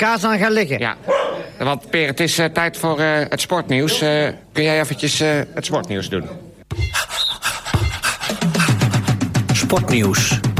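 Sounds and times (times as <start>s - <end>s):
speech: 0.0s - 7.1s, 9.7s - 10.5s
dog panting: 7.0s - 9.1s.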